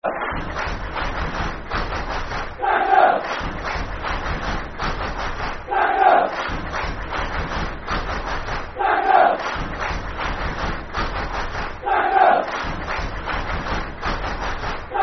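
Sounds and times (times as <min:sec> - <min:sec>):
football crowd clapping: 0:00.0 - 0:15.0
football crowd chanting: 0:02.6 - 0:04.3, 0:05.6 - 0:07.3, 0:08.7 - 0:09.8, 0:11.8 - 0:13.3.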